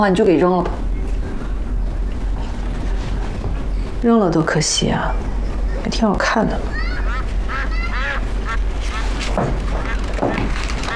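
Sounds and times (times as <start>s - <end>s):
speech: 0.0s - 0.8s, 4.0s - 6.8s
steady low rumbling background: 0.0s - 10.9s
ducks quacking at their coop: 6.8s - 10.9s.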